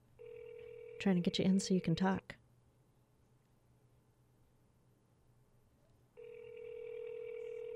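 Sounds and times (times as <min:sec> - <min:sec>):
electronic telephone tone on an outgoing call: 0:00.2 - 0:01.3, 0:06.2 - 0:07.7
speech: 0:01.0 - 0:02.4.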